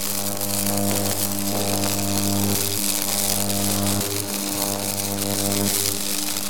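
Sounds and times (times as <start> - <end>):
electric sparks like lightning: 0.0 - 6.4.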